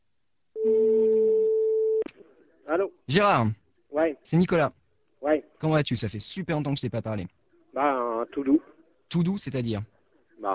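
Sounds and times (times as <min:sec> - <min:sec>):
telephone line tone while calling a number: 0:00.6 - 0:02.0
speech: 0:02.8 - 0:10.5.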